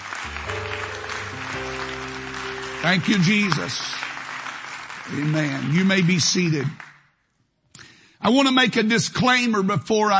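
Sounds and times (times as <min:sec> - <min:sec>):
organ or keyboard chords: 0:00.0 - 0:07.0
audience clapping hands in praise: 0:00.0 - 0:07.2
speech: 0:02.8 - 0:04.0, 0:05.1 - 0:06.8, 0:08.2 - 0:10.1.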